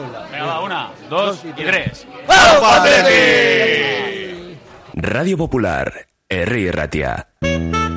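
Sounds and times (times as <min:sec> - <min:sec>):
speech: 0:00.0 - 0:04.0, 0:05.0 - 0:07.7
group shouting a long rallying battle cry: 0:02.3 - 0:04.4.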